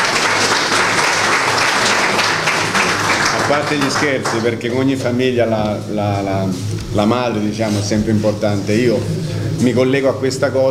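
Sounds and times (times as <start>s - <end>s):
audience applause: 0.0s - 5.0s
speech: 3.5s - 10.6s.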